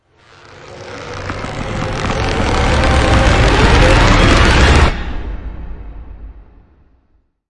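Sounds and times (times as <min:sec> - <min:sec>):
stretched rising sound effect: 0:00.0 - 0:05.8.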